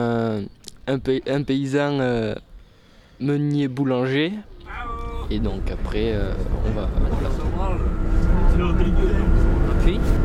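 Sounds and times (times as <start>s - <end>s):
speech: 0.9s - 2.5s, 3.2s - 7.4s, 8.8s - 10.0s
road noise inside a moving bus: 4.5s - 10.2s
moving bus engine rumble: 5.1s - 10.2s.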